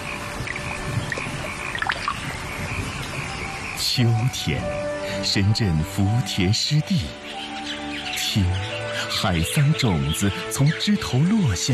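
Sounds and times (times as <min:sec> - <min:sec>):
summer raindrops pattering onto a flooded early-rice paddy in Zengcheng Guangdong China: 0:00.0 - 0:03.4
small splashes and drips: 0:00.4 - 0:02.4
speech: 0:04.0 - 0:07.4, 0:08.4 - 0:11.7.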